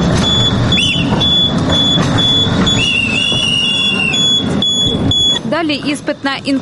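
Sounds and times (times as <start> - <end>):
tram moving slowly on rails: 0.0 - 6.6
whistle signals guiding a reversing tram: 0.2 - 5.4
speech: 5.7 - 6.6.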